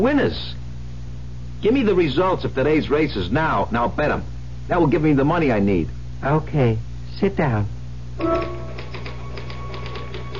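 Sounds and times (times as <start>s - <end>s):
speech: 0.0s - 0.6s, 1.6s - 8.6s
steady low hum: 0.0s - 10.3s
typewriter typing: 8.2s - 10.3s.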